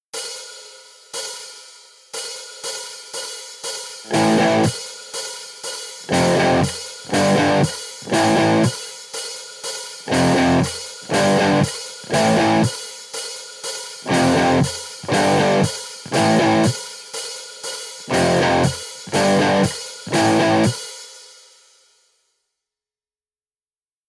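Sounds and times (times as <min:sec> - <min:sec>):
two-note guitar riff: 0:04.1 - 0:04.7, 0:06.1 - 0:08.7, 0:10.1 - 0:12.7, 0:14.1 - 0:16.7, 0:18.1 - 0:20.7.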